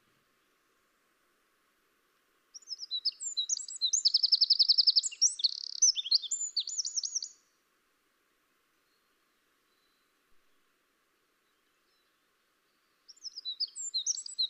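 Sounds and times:
Eurasian wren Troglodytes troglodytes singing: 2.5s - 7.4s, 12.8s - 14.4s.

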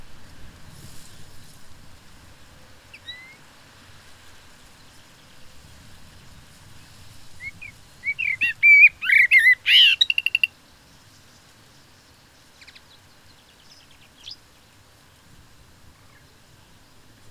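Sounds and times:
common blackbird Turdus merula singing fluting whistles: 2.9s - 3.4s, 7.4s - 10.5s, 12.0s - 14.5s.

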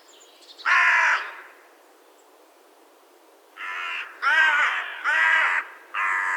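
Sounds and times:
carrion crow Corvus corone harsh raspy cawing: 0.7s - 1.6s, 3.6s - 6.3s.

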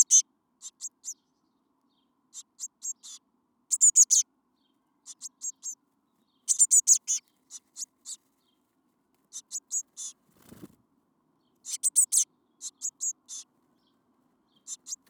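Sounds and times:
Cyanistes caeruleus Eurasian blue tit high piercing chip calls: 0.0s - 1.2s, 2.3s - 4.2s, 5.0s - 5.8s, 6.5s - 8.2s, 9.3s - 10.2s, 11.6s - 13.5s, 14.5s - 15.0s.

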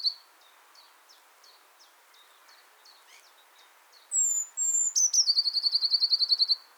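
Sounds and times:
Eurasian blue tit Cyanistes caeruleus song: 0.0s - 6.6s.

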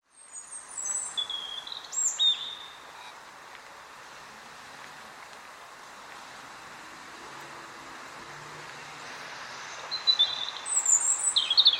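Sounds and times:
European robin singing: 0.0s - 3.2s, 9.5s - 11.7s
soft constant hiss: 0.0s - 11.7s.

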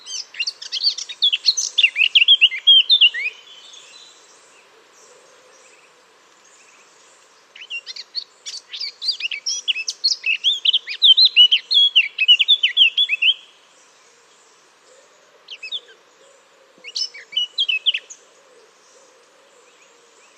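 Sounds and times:
Eurasian blackcap Sylvia atricapilla singing: 0.0s - 3.4s, 7.6s - 13.4s.

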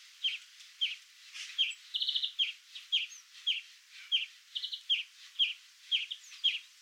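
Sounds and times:
European greenfinch Chloris chloris giving chirping calls and trills: 1.6s - 6.7s.

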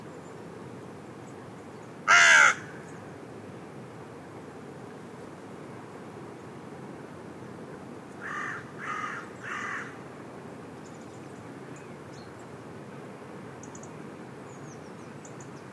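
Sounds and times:
soft background hiss: 0.0s - 15.7s
Carrion crow Corvus corone giving harsh caws: 2.1s - 2.8s, 8.2s - 10.0s.

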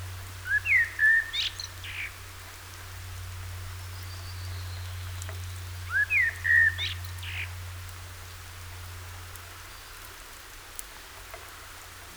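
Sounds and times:
Common blackbird Turdus merula fluty whistled song: 0.5s - 2.1s, 5.9s - 7.5s.

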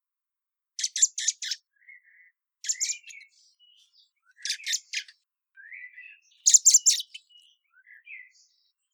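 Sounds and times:
thin squeaky blackbird phrases: 0.8s - 1.6s, 2.7s - 7.5s.

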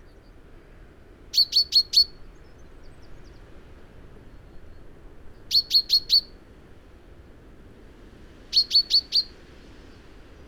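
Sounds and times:
common chaffinch Fringilla coelebs calls: 1.4s - 2.2s, 5.5s - 6.3s, 8.6s - 9.4s.

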